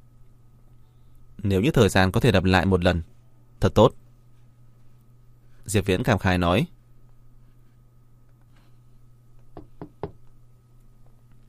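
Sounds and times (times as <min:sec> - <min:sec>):
low steady hum: 0:00.0 - 0:11.4
speech: 0:01.4 - 0:04.0, 0:05.7 - 0:06.8
knocking on a door: 0:09.5 - 0:10.2.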